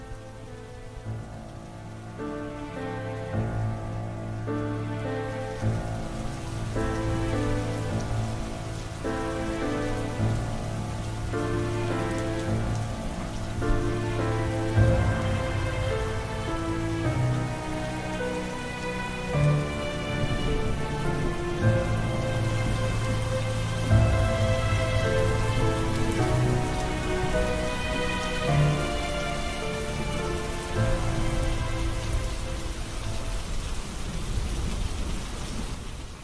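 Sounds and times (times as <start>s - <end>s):
heavy rain falling: 0.0s - 36.2s.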